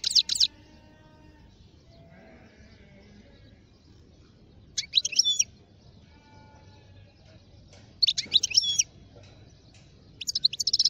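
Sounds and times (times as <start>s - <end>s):
wild European goldfinch twittering song: 0.0s - 0.6s, 4.6s - 5.9s, 7.6s - 10.8s
low background noise: 0.0s - 10.8s.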